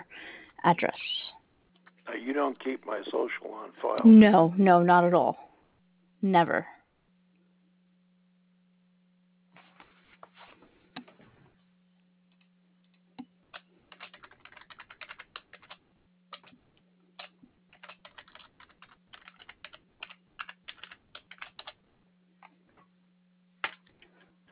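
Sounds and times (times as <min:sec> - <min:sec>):
low steady hum: 0:00.0 - 0:24.5
speech: 0:00.6 - 0:01.1, 0:02.1 - 0:05.5, 0:06.2 - 0:06.8
typing on a computer keyboard: 0:13.5 - 0:16.6, 0:17.2 - 0:21.8.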